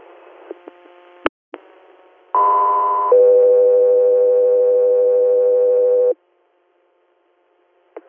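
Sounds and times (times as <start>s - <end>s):
two-tone dispatch paging alert over a radio channel: 2.4s - 6.1s.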